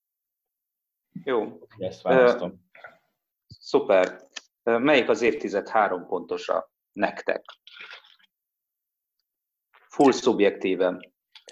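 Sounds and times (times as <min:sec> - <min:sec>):
speech: 0:01.2 - 0:02.9, 0:03.6 - 0:08.0, 0:10.0 - 0:11.5
person sipping Jägermeister from a small glass: 0:07.5 - 0:08.3.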